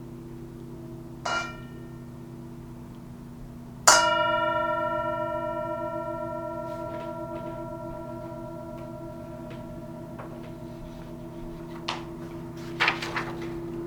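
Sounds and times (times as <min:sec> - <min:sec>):
low steady hum: 0:00.0 - 0:13.8
bell struck with a rich metallic tone: 0:03.9 - 0:12.6.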